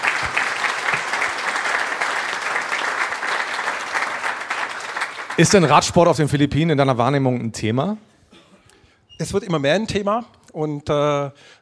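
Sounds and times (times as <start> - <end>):
audience applause: 0.0 - 5.9
speech: 5.4 - 8.1, 9.2 - 11.6.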